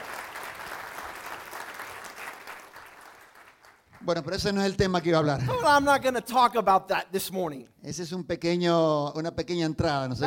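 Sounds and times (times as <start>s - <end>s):
audience applauding: 0.0s - 4.2s
speech: 4.0s - 10.2s.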